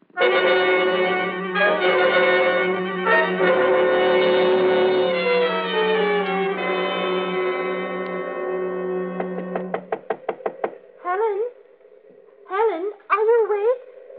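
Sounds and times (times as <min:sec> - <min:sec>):
sustained droning tone: 0:00.2 - 0:12.6
sharp knocks on a locked bedroom door at night: 0:09.2 - 0:10.8.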